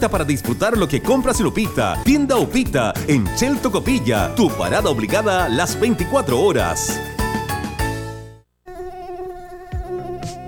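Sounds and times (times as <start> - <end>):
speech: 0.0 - 7.1
Aedes aegypti mosquito buzzing: 8.6 - 10.4.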